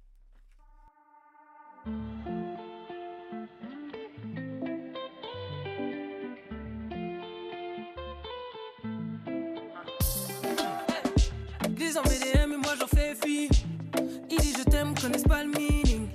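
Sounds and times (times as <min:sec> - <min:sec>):
song with steady beats, deep bass line and layered melodic tones: 0:10.0 - 0:16.1.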